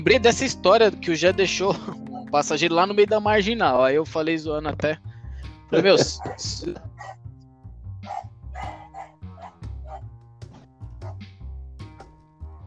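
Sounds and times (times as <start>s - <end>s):
speech: 0.0s - 5.1s, 5.7s - 7.2s
steady tonal music: 0.0s - 12.6s
laughter: 5.7s - 6.9s
dog barking: 6.2s - 7.2s, 8.1s - 10.1s, 11.0s - 11.2s.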